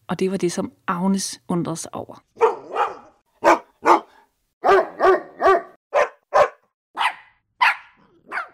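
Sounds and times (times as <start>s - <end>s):
speech: 0.1s - 2.4s
dog barking: 2.4s - 8.5s.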